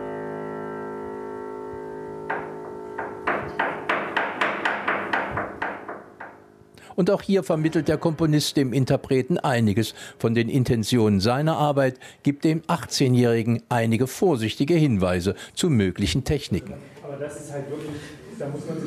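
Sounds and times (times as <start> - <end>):
mallets knocking inside a grand piano body: 1.4 - 9.3
speech: 7.0 - 18.8.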